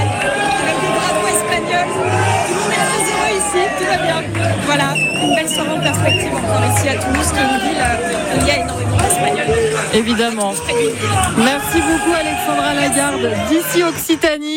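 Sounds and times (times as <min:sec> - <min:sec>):
bursts of cheering: 0:00.0 - 0:14.2
crowd of fans shouting and singing in a bar in Toulouse: 0:00.0 - 0:14.5
whistles: 0:04.9 - 0:06.4
speech: 0:06.0 - 0:09.3, 0:09.9 - 0:14.5.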